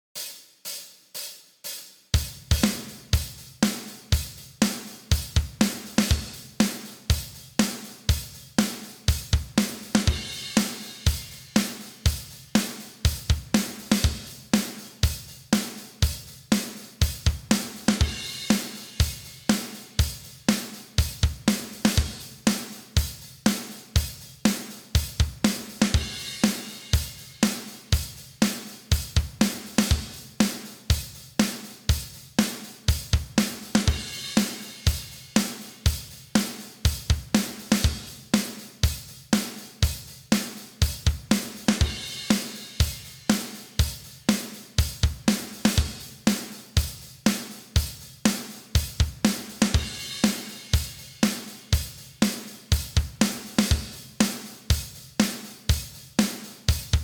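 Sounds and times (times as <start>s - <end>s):
drums at 121 bpm: 0.0s - 57.0s.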